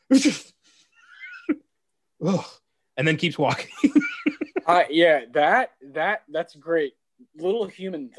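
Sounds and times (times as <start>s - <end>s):
person imitating a sneeze: 0.0s - 0.6s
speech: 0.1s - 0.6s, 2.2s - 8.1s.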